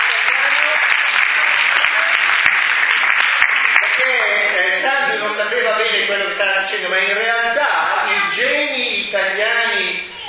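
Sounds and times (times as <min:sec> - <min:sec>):
audience applause: 0:00.0 - 0:05.8
speech: 0:05.3 - 0:10.1.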